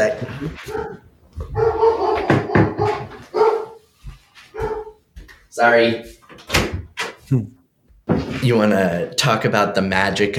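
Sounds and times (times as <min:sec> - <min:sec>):
speech: 0:00.0 - 0:01.6, 0:05.6 - 0:06.2, 0:07.3 - 0:07.6, 0:08.4 - 0:10.3
female dog barking: 0:00.6 - 0:03.8, 0:04.5 - 0:05.0.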